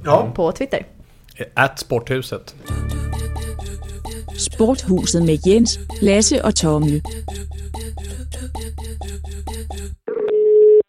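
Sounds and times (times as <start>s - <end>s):
speech: 0.0s - 3.0s, 4.4s - 8.8s
telephone tone while placing a call: 10.1s - 10.8s.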